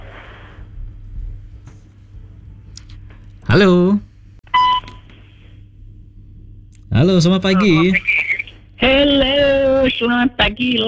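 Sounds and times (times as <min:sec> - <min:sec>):
low hum: 0:00.0 - 0:10.8
speech: 0:03.5 - 0:04.0, 0:07.0 - 0:08.2, 0:08.8 - 0:10.8
single electronic telephone tone: 0:04.5 - 0:05.0.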